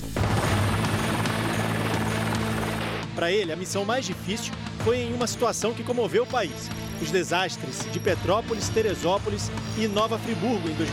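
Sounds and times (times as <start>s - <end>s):
police rescue helicopter flying: 0.0s - 3.2s
speech: 3.2s - 10.9s.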